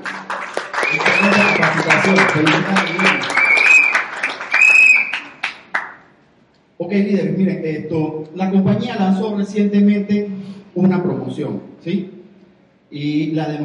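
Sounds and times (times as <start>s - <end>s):
audience applause: 0.0s - 6.0s
speech: 2.0s - 3.1s, 6.9s - 12.2s, 12.9s - 13.6s.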